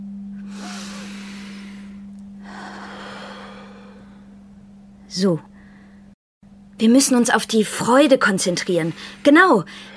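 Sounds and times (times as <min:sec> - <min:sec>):
steady low electrical hum: 0:00.0 - 0:09.9
slow deliberate deep breathing exercise: 0:00.4 - 0:04.4, 0:05.5 - 0:06.2, 0:08.7 - 0:09.9
speech: 0:05.1 - 0:05.5, 0:06.8 - 0:09.9.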